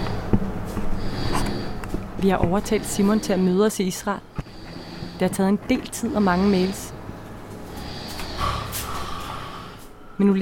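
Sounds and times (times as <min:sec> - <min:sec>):
man snoring lying in an apartment living room: 0:01.0 - 0:01.8, 0:04.4 - 0:05.3, 0:06.1 - 0:07.0, 0:07.7 - 0:09.9
speech: 0:02.2 - 0:04.3, 0:05.2 - 0:06.9, 0:10.2 - 0:10.4.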